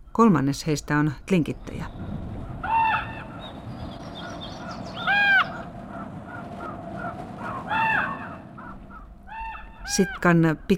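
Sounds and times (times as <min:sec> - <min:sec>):
speech: 0:00.2 - 0:02.0, 0:09.9 - 0:10.7
ravens calling in a small coastal town among snow-capped mountains and old-growth forest: 0:01.9 - 0:10.3.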